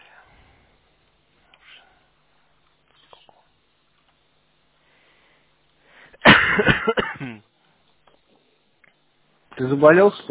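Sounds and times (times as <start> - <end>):
harsh chesty cough from an illness: 6.1 - 7.5
speech: 6.6 - 7.4, 9.6 - 10.3.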